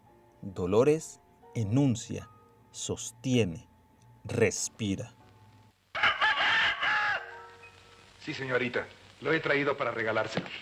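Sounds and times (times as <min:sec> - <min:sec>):
speech: 0:00.4 - 0:05.2, 0:08.2 - 0:10.6
fighting cock crowing: 0:05.9 - 0:07.6.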